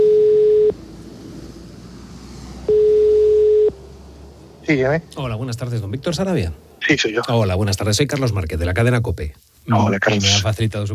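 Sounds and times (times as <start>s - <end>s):
telephone ringback tone during an outgoing call: 0.0s - 0.7s, 2.7s - 3.7s
speech: 4.7s - 10.9s
low hiss of telephone line noise: 6.8s - 10.9s.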